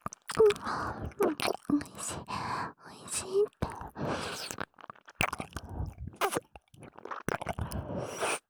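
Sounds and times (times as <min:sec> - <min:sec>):
eager chewing and biting into food: 0:00.0 - 0:02.4, 0:03.5 - 0:08.4
speech: 0:00.4 - 0:04.6.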